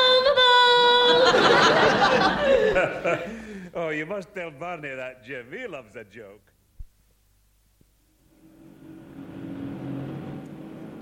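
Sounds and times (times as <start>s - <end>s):
laughter: 0.9s - 3.6s
speech: 3.0s - 6.5s
taxi engine humming and revving up: 8.3s - 11.0s.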